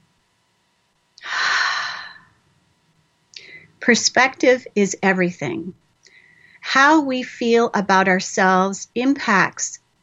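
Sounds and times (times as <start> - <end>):
deep breath in: 1.2 - 2.2, 6.1 - 6.6
speech: 3.9 - 5.8, 6.7 - 9.8.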